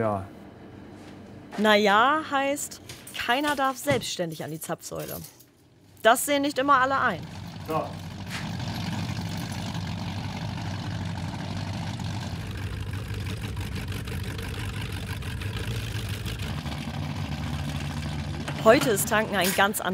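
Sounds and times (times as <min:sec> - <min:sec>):
speech: 0:00.0 - 0:00.4, 0:01.6 - 0:05.4, 0:06.0 - 0:08.1, 0:18.6 - 0:19.9
powerboat engine rumbling: 0:06.4 - 0:19.9.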